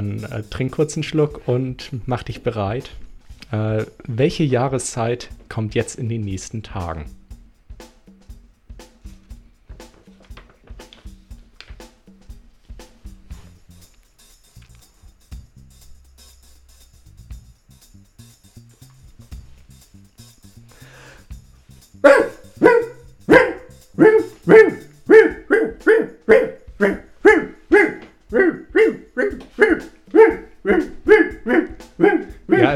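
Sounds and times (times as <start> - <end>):
speech: 0.1 - 7.2
person imitating a dog barking: 22.0 - 32.7.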